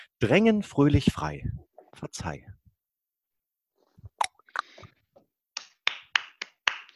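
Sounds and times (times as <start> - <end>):
speech: 0.2 - 2.6
applause for a short poem: 5.5 - 6.9.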